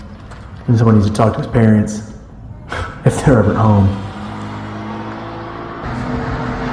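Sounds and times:
road noise: 0.0s - 6.7s
speech: 0.7s - 2.1s, 3.0s - 4.1s
car engine accelerating: 3.2s - 6.7s.

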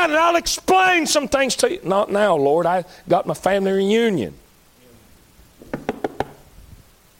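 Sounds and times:
speech: 0.0s - 4.4s
knocking on a door: 5.7s - 6.4s.

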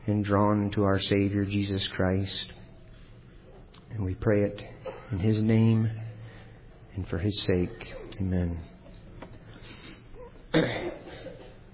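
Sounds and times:
speech: 0.1s - 2.6s, 3.9s - 6.0s, 7.0s - 8.7s, 10.5s - 11.0s
person clearing throat: 4.7s - 5.2s, 10.2s - 11.7s.

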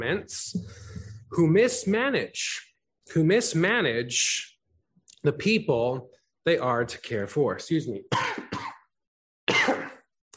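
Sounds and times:
speech: 0.0s - 4.5s, 5.2s - 8.4s
person coughing: 8.1s - 8.9s, 9.5s - 10.1s.

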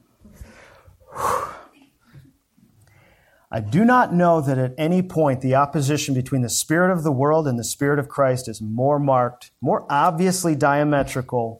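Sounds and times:
faint breathy sounds: 0.2s - 3.5s
deep breath drawn in before reading aloud: 0.3s - 1.8s, 2.9s - 3.5s
speech: 3.5s - 11.5s.

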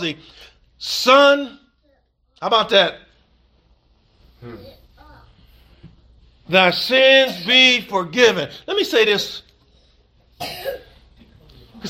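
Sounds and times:
speech: 0.0s - 1.6s, 2.4s - 3.0s, 4.4s - 4.8s, 6.5s - 9.4s, 10.4s - 10.9s
audience member coughing: 7.2s - 7.7s, 10.4s - 11.0s.

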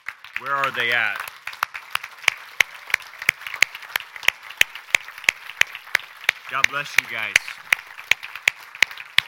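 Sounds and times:
audience applause for veterans: 0.0s - 9.2s
speech: 0.4s - 1.3s, 6.5s - 7.7s.

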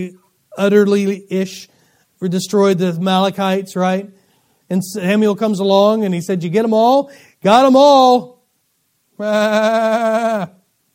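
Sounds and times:
speech: 0.0s - 8.3s, 9.2s - 10.6s
single sheep bleating: 9.2s - 10.6s.

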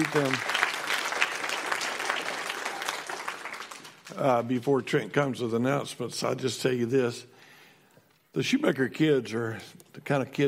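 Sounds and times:
speech: 0.0s - 0.5s, 4.2s - 7.3s, 8.4s - 10.4s
room full of people clapping: 0.0s - 4.5s.

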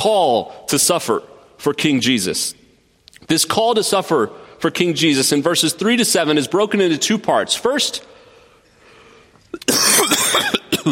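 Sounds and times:
speech: 0.0s - 2.6s, 3.2s - 8.2s, 9.5s - 10.9s
preacher clearing throat and coughing during a sermon: 9.6s - 10.9s.

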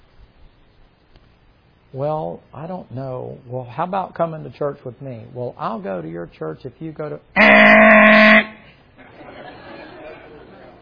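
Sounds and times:
speech: 1.9s - 8.4s
loud blaring air horn blast: 7.4s - 8.8s
laughter: 9.0s - 10.8s.

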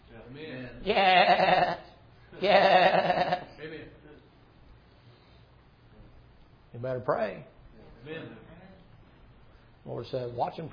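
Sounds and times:
speech: 0.3s - 1.5s, 2.4s - 2.8s, 6.8s - 8.4s, 9.8s - 10.7s
person imitating sheep bleats: 0.8s - 3.5s.

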